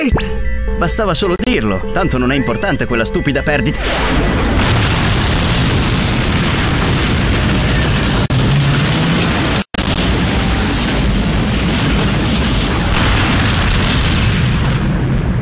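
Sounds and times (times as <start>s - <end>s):
speech: 0.0s - 4.5s
atomic explosion roaring: 4.0s - 15.4s.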